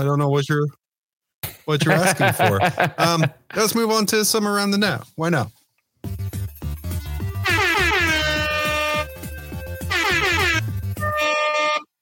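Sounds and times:
speech: 0.0 - 0.8, 1.6 - 6.2
laughter: 1.8 - 3.6
thumping beat: 6.0 - 11.2
rap-style air horn blasts: 7.4 - 12.0.

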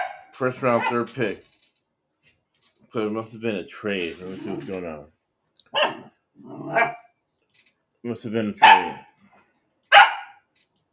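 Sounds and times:
dog barking: 0.0 - 1.0, 5.7 - 6.1, 6.7 - 7.0, 8.6 - 9.0, 9.9 - 10.4
speech: 0.4 - 1.5, 2.9 - 5.9, 6.7 - 7.0, 8.0 - 9.1.

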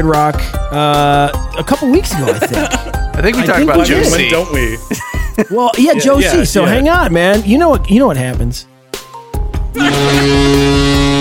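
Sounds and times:
speech: 0.0 - 8.7, 9.8 - 11.1
laughter: 2.0 - 6.7
loud deep brassy horn blaring: 9.8 - 11.1.

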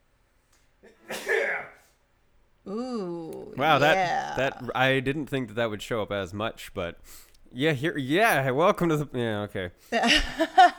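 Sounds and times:
human sneeze: 0.8 - 1.9
speech: 2.7 - 10.7.

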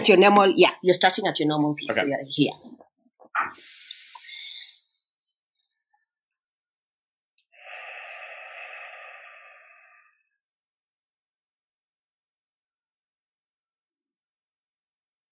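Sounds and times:
speech: 0.0 - 2.7, 3.4 - 3.8
slow breathing in and out through nose: 3.5 - 5.4, 7.5 - 10.4.

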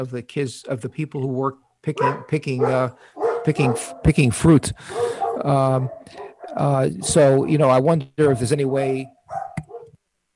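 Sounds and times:
speech: 0.0 - 9.4
dog barking and yelping: 2.0 - 7.5, 8.2 - 10.0.

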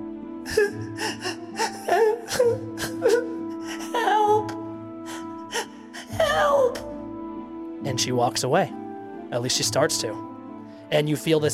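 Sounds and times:
voice crying and wailing: 0.5 - 7.0
speech: 8.0 - 10.3, 10.9 - 11.5.

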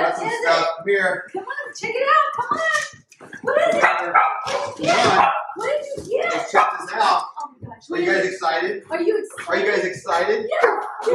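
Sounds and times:
speech: 0.5 - 11.1
Doberman barking and yelping excitedly: 3.7 - 5.7, 6.3 - 7.1, 10.6 - 11.1.

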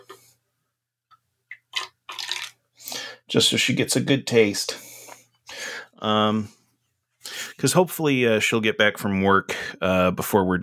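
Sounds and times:
dark lager beer being poured into a glass: 1.5 - 2.6
speech: 3.3 - 4.8, 6.0 - 6.6, 7.6 - 10.6.

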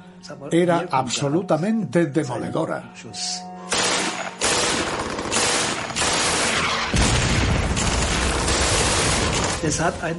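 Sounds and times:
speech: 0.2 - 3.5, 9.6 - 10.1
MG-42 machine gun firing rapid bursts: 3.7 - 9.9.

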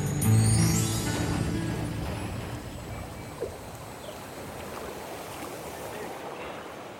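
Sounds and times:
constant flow of river water: 0.0 - 6.9
kayak moving along a river flowing out of a rock cavity: 0.3 - 6.9
kayak paddle strokes splashing: 1.2 - 6.9.

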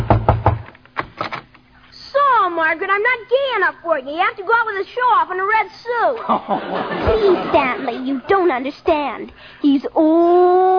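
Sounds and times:
knocking on a house door: 0.0 - 0.7
speech: 2.6 - 10.7
laughter: 6.2 - 9.0.

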